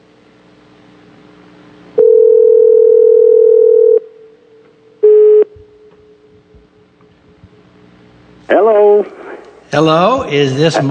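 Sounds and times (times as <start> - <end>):
telephone ringing tone on a call to Germany: 2.0 - 4.1, 5.0 - 5.5
speech: 9.0 - 10.8.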